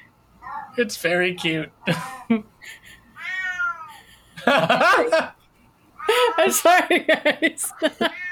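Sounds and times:
cat warbling drawn-out meow: 0.4s - 0.8s, 3.2s - 4.0s
speech: 0.8s - 3.0s, 4.4s - 5.4s, 6.2s - 8.2s
laughter: 1.9s - 3.1s, 4.0s - 5.3s, 6.1s - 8.2s.

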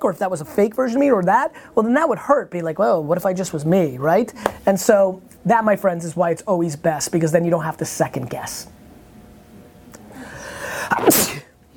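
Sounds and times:
speech: 0.0s - 8.8s
person sneezing: 10.7s - 11.5s.

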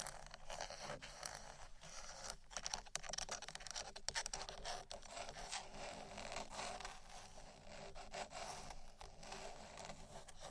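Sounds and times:
dry scratching on a wooden surface: 0.0s - 10.4s.

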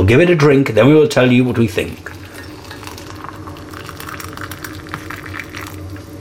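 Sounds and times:
speech: 0.0s - 2.2s
hot water poured onto loose leaf rhubarb tisane: 1.5s - 6.1s.

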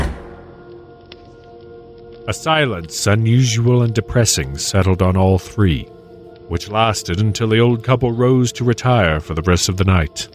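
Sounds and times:
door banging upstairs in a house: 0.0s - 0.7s
speech: 2.3s - 10.3s.

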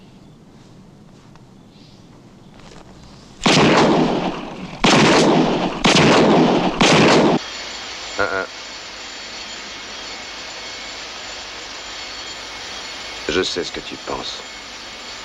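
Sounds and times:
steady low hum: 0.0s - 15.2s
heavy gunshots from a .44 Magnum revolver in a film scene: 3.4s - 7.4s
speech: 13.4s - 14.6s.

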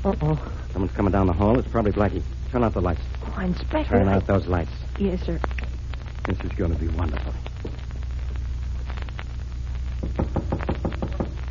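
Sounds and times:
speech: 0.0s - 5.7s, 6.3s - 7.8s
steady low electrical hum: 0.0s - 11.5s
knocking on a door: 10.0s - 11.4s.

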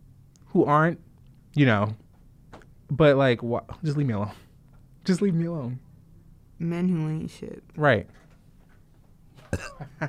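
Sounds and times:
speech: 0.5s - 2.0s, 2.9s - 5.9s, 6.6s - 8.2s, 9.5s - 10.0s
short low burp: 9.4s - 9.9s.

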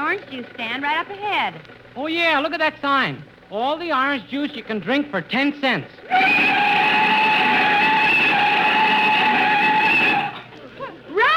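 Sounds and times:
speech: 0.1s - 7.4s
car tire squeal during hard braking: 6.1s - 10.4s.

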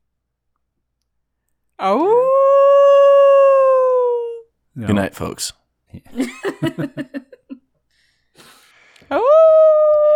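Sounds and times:
speech: 1.8s - 2.3s, 4.8s - 7.3s
person imitating a wolf howl: 1.8s - 4.5s, 9.1s - 10.1s
laughter: 6.1s - 7.6s.

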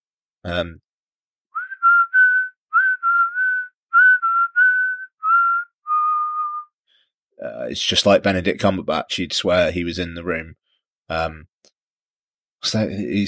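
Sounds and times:
speech: 0.4s - 0.9s, 7.4s - 11.5s, 12.6s - 13.2s
person whistling a short wavering melody: 1.5s - 6.8s.

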